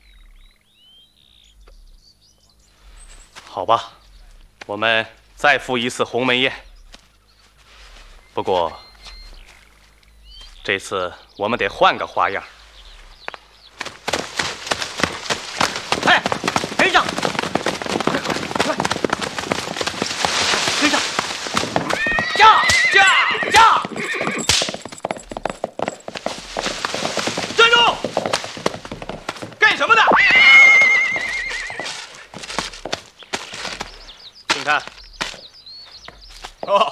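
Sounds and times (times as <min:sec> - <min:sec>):
horses neighing: 0:02.8 - 0:35.4
horse hooves clip-clopping as riders mount and set off: 0:02.9 - 0:36.9
speech: 0:03.6 - 0:04.0, 0:04.7 - 0:06.7, 0:08.4 - 0:08.8, 0:10.6 - 0:12.5
people shouting: 0:21.8 - 0:24.0.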